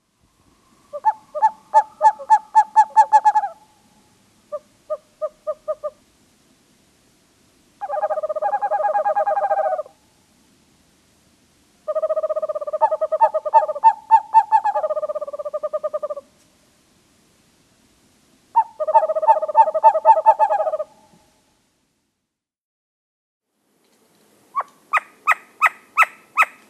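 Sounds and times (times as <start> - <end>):
Western Screech Owl calling: 0.8 - 6.0, 7.8 - 10.0, 11.8 - 16.3, 18.5 - 21.2, 24.5 - 26.6.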